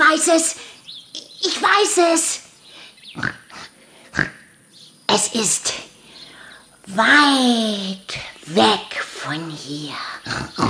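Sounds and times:
speech: 0.2s - 0.8s, 1.6s - 2.4s, 3.2s - 3.4s, 4.2s - 4.4s, 5.1s - 5.9s, 6.9s - 10.6s
pig grunting: 3.1s - 4.4s, 10.2s - 10.6s.

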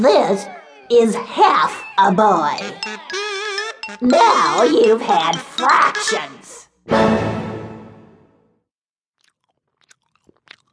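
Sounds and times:
speech: 0.0s - 3.3s, 3.9s - 7.4s
chewing clicks and smacks: 9.2s - 10.7s
crunching bite: 9.2s - 10.7s.

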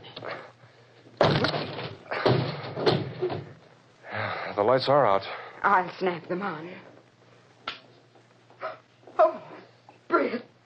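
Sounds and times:
door being forced open: 1.2s - 3.6s
speech: 4.6s - 6.9s.

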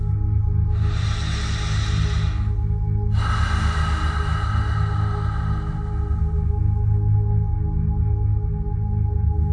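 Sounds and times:
steady low musical drone: 0.0s - 9.5s
deep breaths during a guided trance relaxation: 0.7s - 7.1s.

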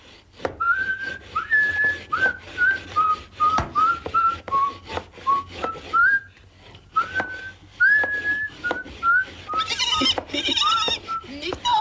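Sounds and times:
wood planing on a workbench: 0.0s - 11.7s
carpenter whistling a light cheerful tune: 0.6s - 6.3s, 7.0s - 9.6s
sharp knocks and taps: 3.5s - 5.8s, 8.0s - 11.7s.

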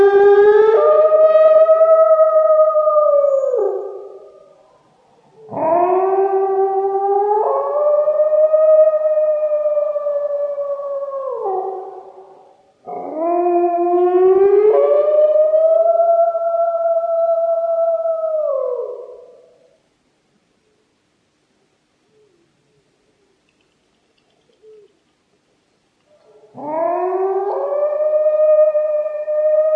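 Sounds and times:
wolves or dogs howling in long clear calls: 0.0s - 4.6s, 5.3s - 19.6s, 26.2s - 29.7s.

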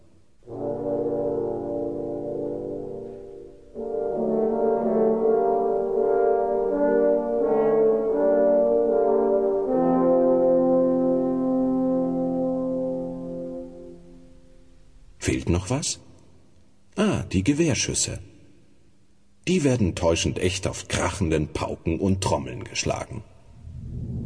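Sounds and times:
three horns playing a dark menacing theme in an orchestral piece: 0.0s - 14.6s
speech: 15.5s - 16.1s, 17.3s - 18.3s, 19.5s - 23.3s.

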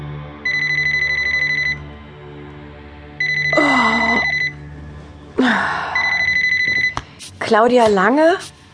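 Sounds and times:
mobile phone ringing with a bright electronic trill: 0.4s - 2.0s, 3.2s - 4.6s, 6.0s - 7.0s
speech: 7.5s - 8.6s.

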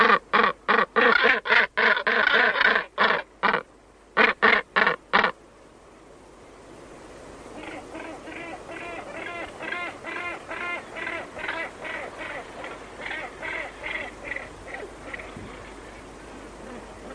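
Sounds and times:
Northern gannet harsh rasping calls: 0.0s - 5.4s, 7.6s - 15.4s
background noise: 0.0s - 17.1s.

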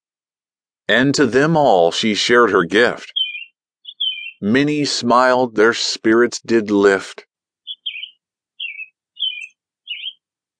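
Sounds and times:
speech: 0.9s - 3.2s, 4.4s - 7.3s
bird chirping bright warbling notes: 2.5s - 4.6s, 7.6s - 10.3s.

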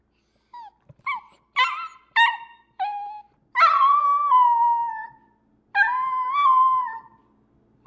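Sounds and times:
dog yelping: 0.6s - 7.2s
dog howling: 1.6s - 5.2s, 5.8s - 7.2s.

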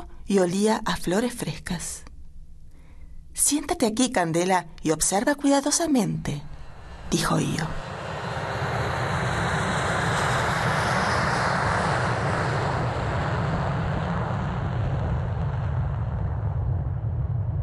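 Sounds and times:
speech: 0.3s - 2.1s, 3.4s - 6.5s, 7.1s - 7.8s
spaceship taking off smoothly with deep steady roar: 6.2s - 17.6s.

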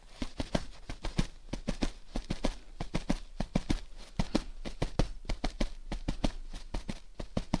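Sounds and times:
hand patting a duvet on a bed imitating train wheels: 0.0s - 7.5s.

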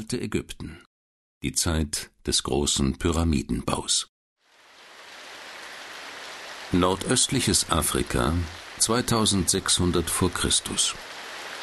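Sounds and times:
speech: 0.0s - 4.1s, 6.7s - 11.2s
heavy monsoon rain pattering on soil in the Ethiopian Highlands: 4.4s - 11.6s.

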